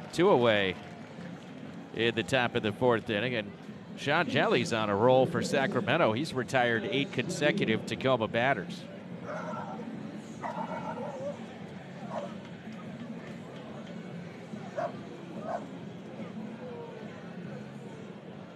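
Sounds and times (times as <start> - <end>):
murmur of a large crowd in an open stadium: 0.0 - 18.5
speech: 0.1 - 0.9, 2.0 - 9.5
dog barking at a ballpark: 12.1 - 12.3.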